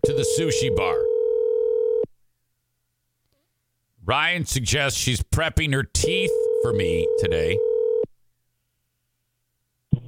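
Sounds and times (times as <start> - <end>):
phone line ringing out on an unanswered call: 0.0 - 2.1, 6.0 - 8.1
speech: 0.1 - 1.1, 4.1 - 7.7.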